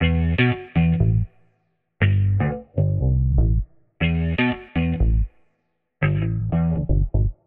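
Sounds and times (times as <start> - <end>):
warped bass loop in F: 0.0 - 1.3, 2.0 - 5.3, 6.0 - 7.4.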